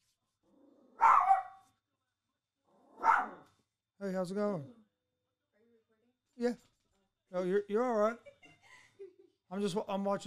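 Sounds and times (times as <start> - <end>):
small male chihuahua barking: 1.0 - 1.6, 3.0 - 3.4
speech: 4.0 - 4.8, 6.4 - 6.7, 7.3 - 8.3, 9.5 - 10.2.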